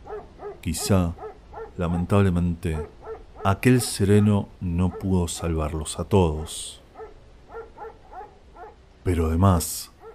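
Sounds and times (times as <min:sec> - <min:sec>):
dog barking: 0:00.0 - 0:05.6, 0:06.9 - 0:08.8, 0:09.9 - 0:10.1
speech: 0:00.6 - 0:01.2, 0:01.8 - 0:06.8, 0:09.0 - 0:09.9.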